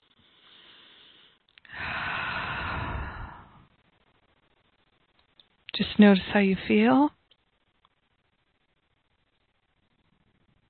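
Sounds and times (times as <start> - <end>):
faint quiet breath: 0.0 - 3.8
long deep inhale: 0.1 - 3.8
speech: 5.8 - 7.2.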